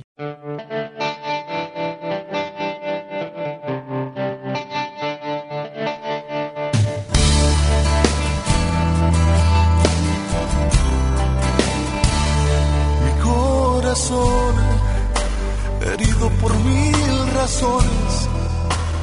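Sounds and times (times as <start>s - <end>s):
pulsing effects-heavy melodic line: 0.2s - 19.0s
full band with heavy bass and drums: 6.7s - 19.0s.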